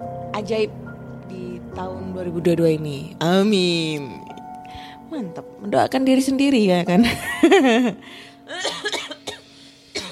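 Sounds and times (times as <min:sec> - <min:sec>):
speech: 0:00.4 - 0:08.7
person coughing harshly: 0:08.5 - 0:10.1.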